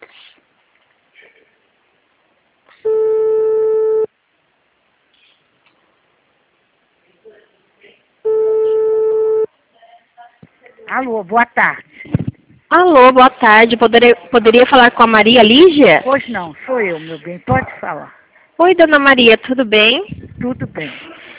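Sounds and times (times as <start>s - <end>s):
telephone ringing tone on an outgoing call: 2.8s - 4.1s, 8.3s - 9.5s
speech: 11.0s - 21.1s.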